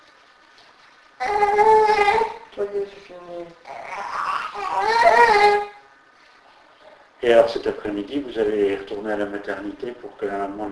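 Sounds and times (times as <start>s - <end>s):
baby crying: 1.2s - 2.5s, 3.6s - 5.9s
speech: 1.2s - 5.7s, 7.2s - 10.7s.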